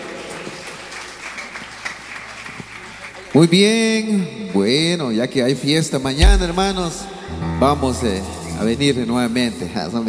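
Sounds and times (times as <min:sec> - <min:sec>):
audience at a church service applauding: 0:00.0 - 0:03.5
speech: 0:03.4 - 0:10.0.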